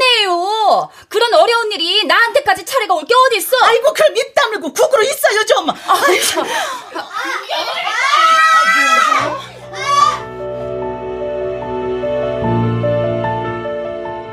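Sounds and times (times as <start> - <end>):
speech: 0.7 - 7.9
laughter: 5.8 - 10.1
child's shrill wavering scream: 7.2 - 10.3
sustained music: 8.7 - 14.3.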